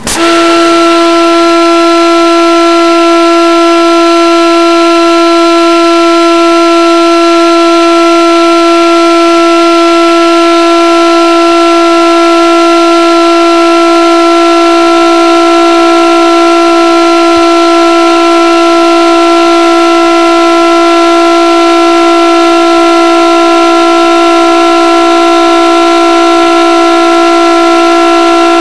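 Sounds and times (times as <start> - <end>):
AWS train warning system on a Class 47 train: 0.0 - 28.6.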